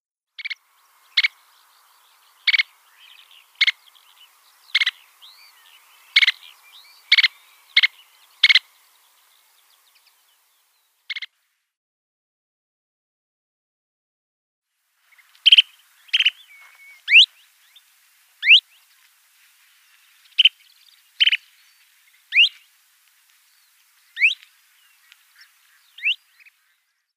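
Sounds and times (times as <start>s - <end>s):
Kentish plover calls: 0.4s - 11.3s, 15.0s - 27.0s.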